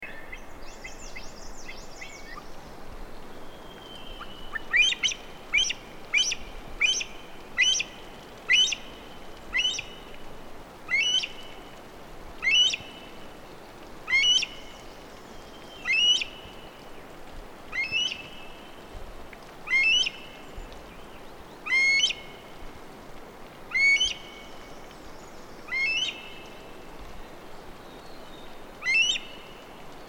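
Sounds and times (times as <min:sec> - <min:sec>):
Himalayan Monal Lophophorus impejanus calling: 0:04.4 - 0:10.1, 0:10.9 - 0:11.6, 0:14.1 - 0:14.8, 0:17.7 - 0:18.3, 0:19.6 - 0:20.3, 0:21.6 - 0:22.4, 0:23.7 - 0:24.6, 0:25.7 - 0:26.5, 0:28.8 - 0:29.5.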